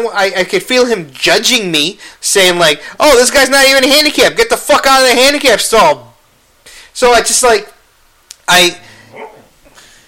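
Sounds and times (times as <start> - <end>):
speech: 0.0 - 6.1, 7.0 - 7.8, 8.5 - 9.3
sleeping dog giving a soft low grumble: 8.9 - 9.6
sleeping dog barking: 9.0 - 9.5.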